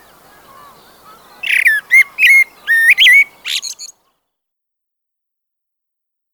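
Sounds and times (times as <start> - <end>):
common blackbird song: 0.0 - 4.4.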